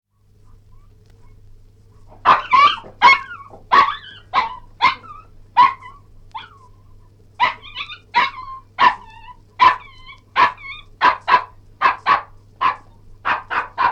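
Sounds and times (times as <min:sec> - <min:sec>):
steady low hum: 0:00.1 - 0:13.9
Cairn terrier barking and yelping: 0:02.1 - 0:06.7, 0:07.4 - 0:13.9.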